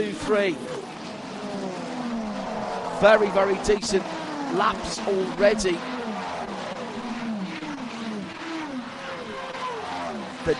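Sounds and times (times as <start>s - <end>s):
speech: 0.0s - 0.9s, 3.0s - 6.0s
race car engines including a Ferrari passing by during a motor race: 0.0s - 10.5s.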